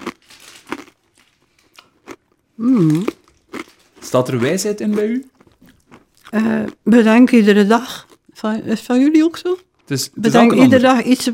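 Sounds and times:
fortune cookie paper wrapper crinkling open: 0.0s - 1.7s, 3.2s - 4.0s
speech: 2.6s - 3.2s, 4.1s - 5.4s, 6.3s - 11.3s.

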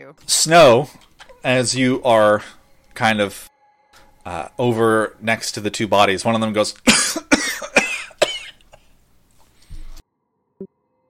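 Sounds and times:
speech: 0.1s - 3.5s, 4.2s - 7.3s
man's voice imitating coughing from behind crates: 6.8s - 8.8s.

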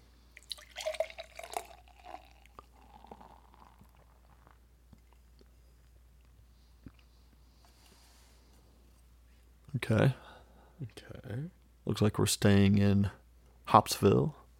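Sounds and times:
beer dripping: 0.4s - 4.1s
beer pouring into a glass: 0.4s - 4.6s
speech: 9.9s - 10.2s, 10.8s - 14.4s.

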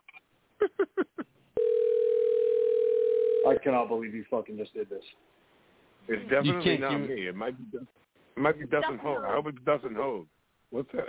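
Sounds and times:
steady unbroken telephone tone: 1.6s - 3.5s
speech: 3.6s - 5.4s, 6.1s - 11.0s.

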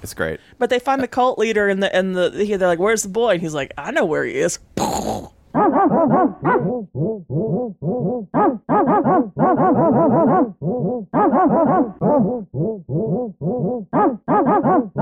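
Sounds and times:
speech: 0.0s - 14.9s
dog growling and barking: 4.8s - 14.9s.

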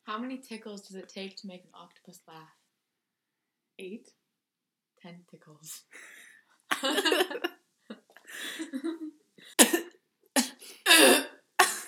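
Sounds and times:
speech: 0.2s - 2.6s, 3.8s - 4.2s, 5.0s - 9.9s
laughter: 6.7s - 7.5s, 8.3s - 9.1s
person coughing from choking on a macadamia nut: 6.7s - 7.5s, 9.6s - 11.8s.

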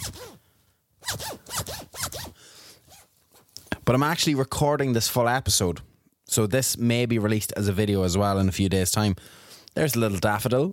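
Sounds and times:
clothing zipper pulled up and down: 0.0s - 0.4s, 1.0s - 3.1s
speech: 3.9s - 10.7s.

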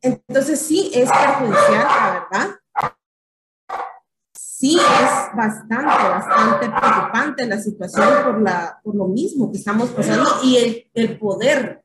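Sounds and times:
speech: 0.0s - 3.0s, 4.6s - 11.8s
puppies barking: 1.0s - 2.9s, 3.7s - 4.0s, 4.8s - 8.6s.

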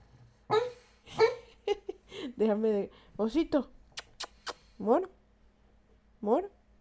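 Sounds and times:
sleeping dog whimpering while dreaming: 0.5s - 1.6s
speech: 2.4s - 3.8s, 4.8s - 5.2s, 6.2s - 6.6s.

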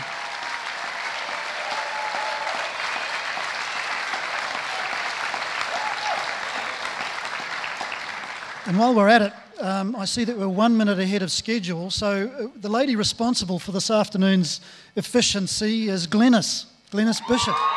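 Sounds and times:
large audience applauding graduates at an award presentation: 0.0s - 8.8s, 17.5s - 17.7s
speech: 8.7s - 17.7s.

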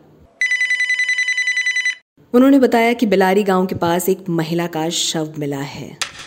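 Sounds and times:
telephone ringing with a buzzing trill: 0.4s - 2.0s
speech: 2.3s - 6.2s.

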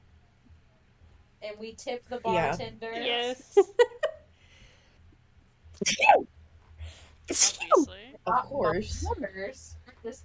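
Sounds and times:
faint low hum: 0.0s - 10.2s
speech: 1.4s - 3.9s, 5.8s - 6.3s, 7.3s - 10.2s
person sneezing: 7.3s - 7.9s.

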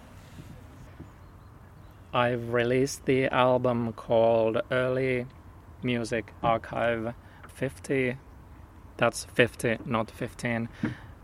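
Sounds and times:
wind buffeting the microphone: 0.0s - 1.3s
small boat low rumble on open water near the shore: 0.0s - 11.2s
speech: 2.1s - 8.3s, 9.0s - 11.2s.

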